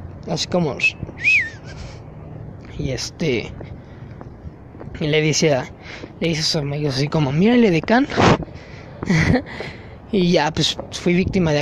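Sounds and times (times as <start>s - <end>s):
speech: 0.2s - 1.9s, 2.8s - 3.8s, 4.9s - 8.4s, 9.0s - 11.6s
person imitating a whistled catcall: 0.8s - 1.8s
laughter: 9.0s - 9.6s.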